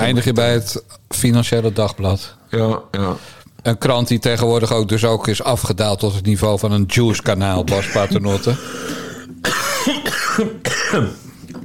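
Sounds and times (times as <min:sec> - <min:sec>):
speech: 0:00.0 - 0:11.3
person coughing after choking on a mint: 0:07.7 - 0:08.6, 0:09.4 - 0:11.2
brief gasps: 0:08.5 - 0:09.3.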